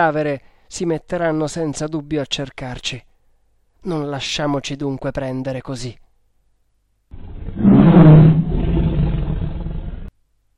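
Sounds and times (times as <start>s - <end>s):
speech: 0.0s - 3.1s, 3.8s - 6.0s
tiger roaring and growling: 7.1s - 10.1s.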